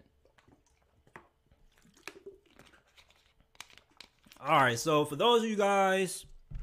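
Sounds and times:
plastic water bottle crinkling and squeaking: 0:00.4 - 0:04.5
speech: 0:04.4 - 0:06.3.

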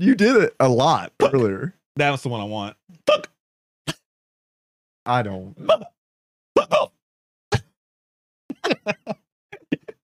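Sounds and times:
speech: 0:00.0 - 0:03.3, 0:05.0 - 0:05.9
person hiccuping: 0:03.0 - 0:04.0, 0:05.6 - 0:06.0, 0:06.6 - 0:06.9
laughter: 0:08.5 - 0:10.0.

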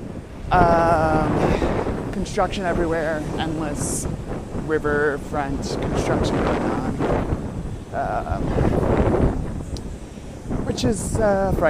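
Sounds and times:
wind buffeting microphone: 0:00.0 - 0:11.6
speech: 0:00.5 - 0:01.4, 0:02.2 - 0:09.4, 0:10.8 - 0:11.6.

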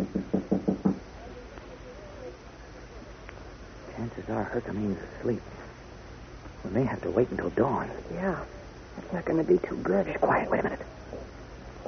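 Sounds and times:
soft knocking on a bolted door: 0:00.0 - 0:01.0
speech: 0:04.2 - 0:05.6, 0:06.7 - 0:10.9.

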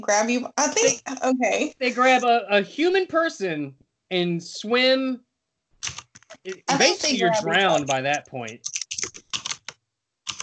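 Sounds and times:
speech: 0:00.0 - 0:05.2, 0:05.8 - 0:09.2
laughter: 0:01.8 - 0:05.1, 0:06.5 - 0:08.5
typing on a computer keyboard: 0:08.6 - 0:09.7, 0:10.3 - 0:10.4.

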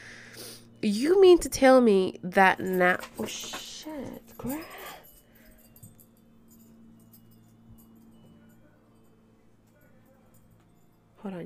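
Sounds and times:
low steady hum: 0:00.0 - 0:11.4
speech: 0:00.8 - 0:04.8
dog tags jingling: 0:02.4 - 0:11.2.

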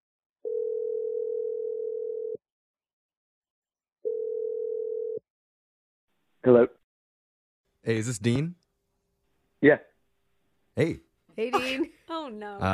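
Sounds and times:
landline telephone dial tone: 0:00.4 - 0:02.4, 0:04.1 - 0:05.2
speech: 0:06.4 - 0:06.8, 0:07.8 - 0:08.6, 0:09.6 - 0:09.9, 0:10.8 - 0:12.7.

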